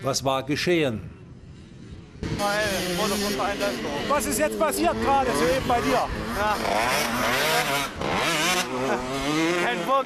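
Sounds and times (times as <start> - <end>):
speech: 0.0 - 1.2, 2.4 - 10.0
125-class motorcycle engine revving hard on a race track: 2.1 - 10.0.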